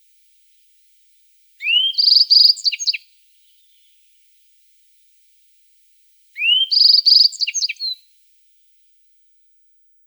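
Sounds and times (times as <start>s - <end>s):
yellow-browed bunting song: 1.6s - 4.2s, 6.3s - 8.2s
speech: 2.0s - 2.4s.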